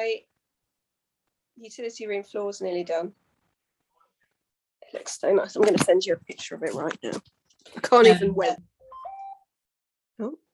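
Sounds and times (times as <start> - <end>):
speech: 0.0 - 0.3, 1.6 - 3.2, 4.9 - 8.7, 10.2 - 10.4
electronic phone alert tonal beep: 8.8 - 9.5.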